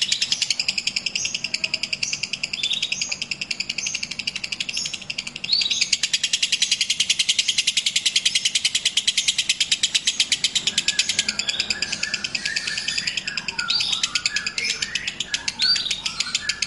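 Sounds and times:
kept lovebird long ngekek-style trill used as a lure call: 0.0s - 16.6s.

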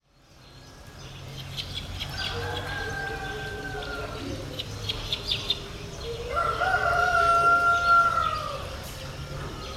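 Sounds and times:
rooster crowing at sunrise in Yaoundé, Cameroon: 2.1s - 4.3s, 6.2s - 8.7s.

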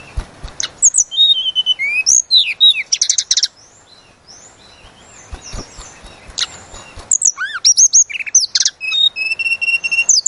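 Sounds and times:
Sunda robin song with quick high whistles and buzzy trilled notes: 0.0s - 10.2s
faint scattered bird chirps: 0.0s - 10.2s.

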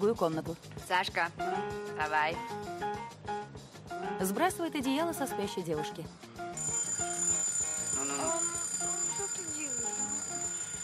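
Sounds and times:
speech: 0.0s - 3.4s, 4.2s - 6.3s
alarm clock ringing with a melodic run of tones: 6.6s - 10.8s.

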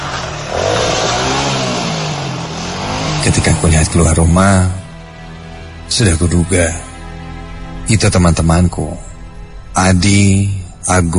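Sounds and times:
motorbike engine revving outside at night: 0.0s - 5.0s
speech: 3.2s - 4.8s, 5.9s - 6.9s, 7.9s - 9.0s, 9.8s - 11.1s.

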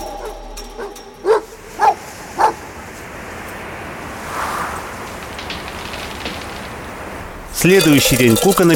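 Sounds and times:
dog barking behind a mesh fence: 0.2s - 2.6s
speech: 7.6s - 8.7s.

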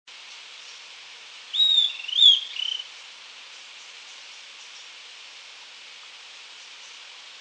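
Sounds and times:
faint steady hiss: 0.1s - 7.3s
Southern antpipit singing: 1.5s - 2.9s.

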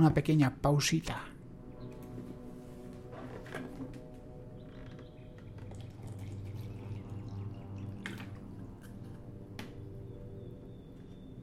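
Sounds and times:
speech: 0.0s - 1.3s
water dripping: 4.9s - 9.8s
small amount of water being poured: 5.4s - 9.1s.

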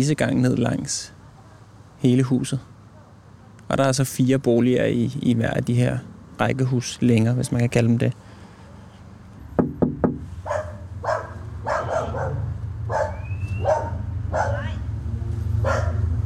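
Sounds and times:
speech: 0.0s - 1.2s, 2.0s - 2.7s, 3.7s - 8.3s
sharp knocks on a door: 9.6s - 10.3s
dog barking outside a red-brick row house: 10.4s - 14.8s, 15.6s - 16.1s.

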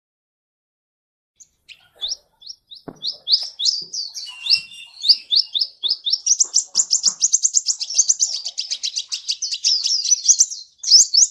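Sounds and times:
sunbird song: 1.4s - 11.2s.

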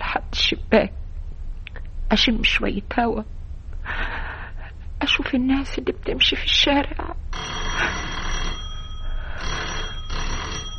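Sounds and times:
hiss: 0.0s - 7.7s
speech: 0.5s - 1.0s, 2.1s - 3.4s, 5.1s - 8.0s
telephone ringing: 7.3s - 10.7s.

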